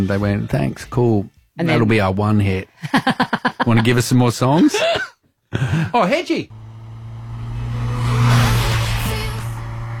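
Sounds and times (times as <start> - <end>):
speech: 0.0 - 6.6
laughter: 2.8 - 6.0
car engine humming and revving: 6.5 - 9.9.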